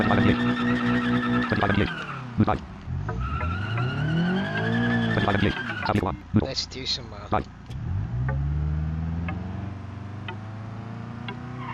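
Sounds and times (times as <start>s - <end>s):
speech: 0.0s - 2.8s, 5.2s - 7.8s
car tires squealing as a car spins out: 0.0s - 6.5s, 7.3s - 11.7s
car engine whine: 0.0s - 11.7s.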